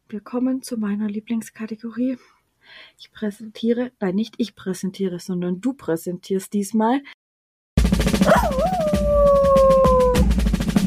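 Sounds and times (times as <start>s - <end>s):
speech: 0.1s - 7.2s
dog howling: 8.2s - 10.3s.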